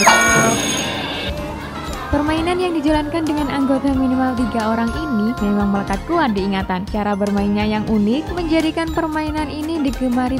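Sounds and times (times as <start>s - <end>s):
school bell ringing for class: 0.0s - 6.2s
speech: 2.6s - 10.3s.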